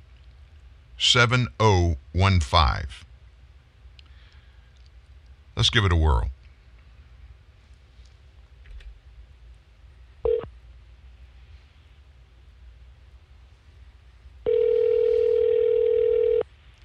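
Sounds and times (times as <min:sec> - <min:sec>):
faint low hum: 0:00.0 - 0:16.8
speech: 0:01.0 - 0:03.1, 0:05.6 - 0:06.4
ringback tone on an outgoing phone call: 0:14.4 - 0:16.4.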